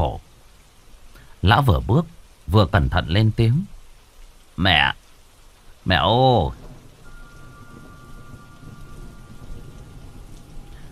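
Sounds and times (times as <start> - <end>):
steady rain falling at night around a house: 0.0 - 10.9
speech: 1.4 - 3.7, 4.6 - 5.0, 5.8 - 6.6
low rumble: 6.6 - 10.9.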